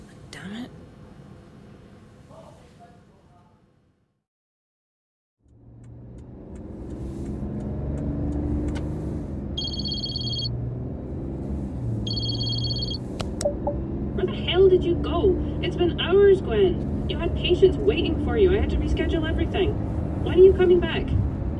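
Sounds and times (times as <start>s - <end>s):
car engine starting and driving off: 5.5s - 21.5s
electronic beeping: 9.6s - 10.5s, 12.1s - 13.8s
speech: 14.8s - 21.2s.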